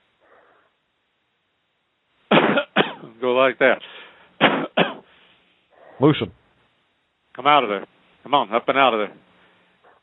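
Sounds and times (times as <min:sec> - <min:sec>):
deep chesty cough: 0:02.3 - 0:03.1, 0:04.4 - 0:05.1
speech: 0:03.2 - 0:04.6, 0:06.0 - 0:06.4, 0:07.4 - 0:09.3.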